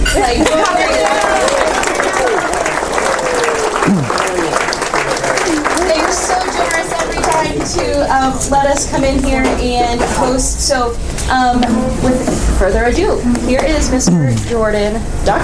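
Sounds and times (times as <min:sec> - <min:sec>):
speech: 0:00.2 - 0:00.8, 0:08.8 - 0:15.4
room full of people applauding: 0:00.3 - 0:07.9
scattered cheers and whoops from a crowd: 0:00.4 - 0:04.5.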